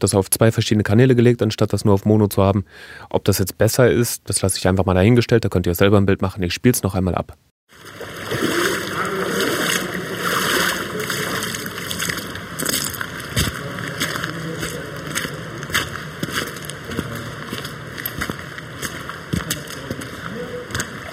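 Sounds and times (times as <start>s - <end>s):
speech: 0.0s - 8.4s
footsteps in rubber boots splashing through water: 7.7s - 21.1s.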